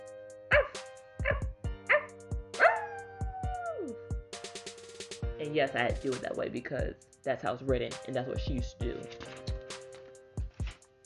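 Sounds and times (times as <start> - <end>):
person imitating dog barking in a song: 0.5 - 4.0
speech: 5.5 - 9.3.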